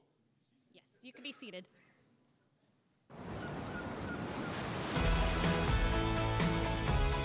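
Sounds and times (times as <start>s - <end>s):
speech: 1.0s - 1.9s
ocean waves crashing on a beach: 3.2s - 5.7s
bass-heavy music with a beat: 5.0s - 7.2s.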